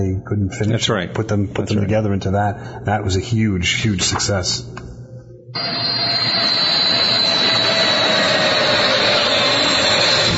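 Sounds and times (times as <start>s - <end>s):
speech: 0.0s - 4.9s, 5.5s - 6.1s
jet airplane roaring overhead: 5.6s - 10.3s.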